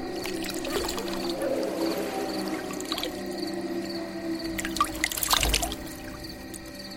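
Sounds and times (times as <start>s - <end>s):
water pouring and splashing over hands: 0.1s - 3.3s, 4.5s - 6.9s.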